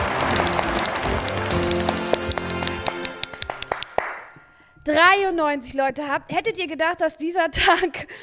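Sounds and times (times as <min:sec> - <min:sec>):
crowd applauding: 0:00.0 - 0:04.4
speech: 0:04.8 - 0:08.2.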